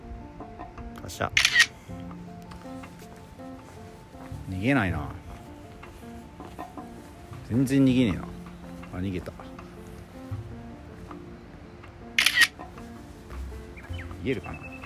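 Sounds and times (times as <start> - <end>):
speech: 1.2 - 1.6, 4.6 - 5.2, 7.5 - 8.3, 9.0 - 9.3, 14.3 - 14.7
camera shutter taking a photo of a fox: 1.4 - 1.8, 12.2 - 12.6.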